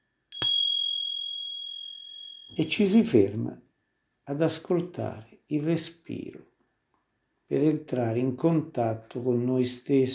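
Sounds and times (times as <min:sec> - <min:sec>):
Zen monastery bell ringing: 0:00.4 - 0:02.7
speech: 0:02.6 - 0:03.6, 0:04.3 - 0:06.5, 0:07.5 - 0:10.1.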